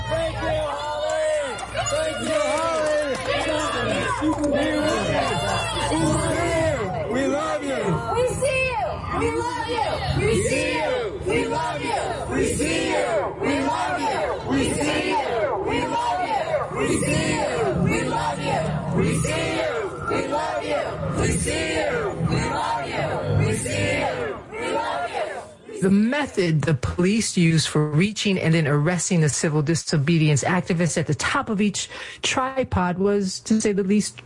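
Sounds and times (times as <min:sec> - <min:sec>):
large crowd at a protest cheering and shouting: 0:00.0 - 0:26.0
speech: 0:07.2 - 0:15.2, 0:25.8 - 0:34.2.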